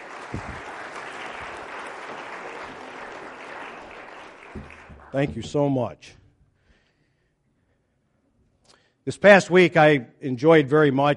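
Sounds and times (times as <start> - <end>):
sustained applause from a sizable audience: 0.0 - 5.7
speech: 4.6 - 6.2, 9.0 - 11.1.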